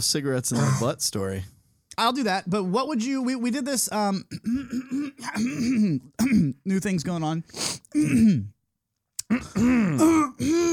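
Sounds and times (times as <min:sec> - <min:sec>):
speech: 0:00.0 - 0:08.6, 0:09.3 - 0:10.7
throat clearing: 0:04.3 - 0:06.6, 0:08.0 - 0:08.5, 0:09.2 - 0:10.7.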